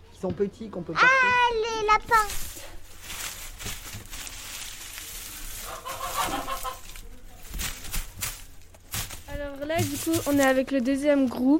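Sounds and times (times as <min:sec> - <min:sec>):
noisy outdoor background on a farm: 0:00.0 - 0:11.5
speech: 0:00.2 - 0:02.8, 0:09.4 - 0:11.5
hens clucking and chattering on a farm: 0:01.8 - 0:11.0.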